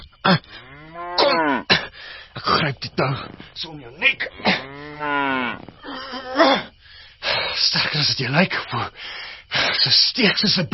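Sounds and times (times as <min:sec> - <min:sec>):
speech: 0:00.3 - 0:00.6, 0:02.6 - 0:06.6, 0:07.6 - 0:10.7
cow mooing: 0:00.6 - 0:01.7, 0:04.3 - 0:05.7.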